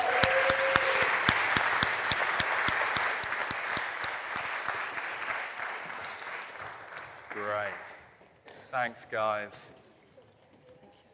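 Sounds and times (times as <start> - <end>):
crowd applauding volunteers: 0.0 - 7.9
sharp rhythmic claps: 0.0 - 8.0
speech: 8.8 - 9.8.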